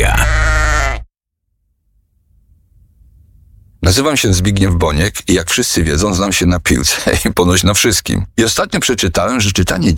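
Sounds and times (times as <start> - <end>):
sheep bleating: 0.0 - 1.1
speech: 3.9 - 9.9.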